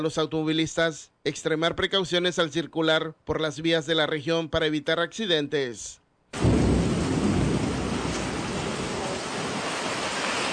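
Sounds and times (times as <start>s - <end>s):
speech: 0.0s - 6.5s
heavy rain: 6.4s - 10.5s.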